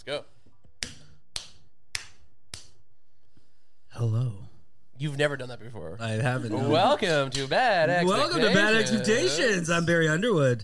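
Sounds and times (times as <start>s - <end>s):
speech: 0.0s - 0.3s, 5.0s - 10.6s
hand clapping: 0.7s - 2.9s.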